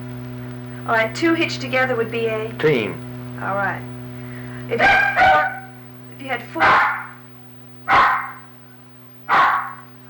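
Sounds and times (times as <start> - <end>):
steady low electrical hum: 0.0 - 10.0
speech: 0.8 - 3.9, 4.7 - 5.4, 6.2 - 6.9
dog barking: 4.7 - 5.8, 6.5 - 7.2, 7.9 - 8.5, 9.3 - 9.9.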